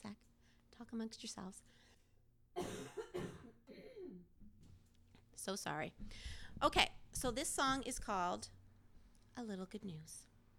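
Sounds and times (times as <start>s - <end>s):
speech: 0.9s - 1.9s, 5.4s - 8.6s, 9.4s - 10.3s
harsh coughing: 2.6s - 4.3s
soft throat-clearing rasp: 2.6s - 4.3s.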